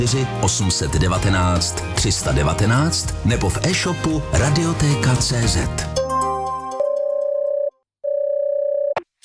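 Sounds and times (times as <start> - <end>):
speech: 0.0 - 6.0
electronic telephone ringing tone: 6.8 - 9.0.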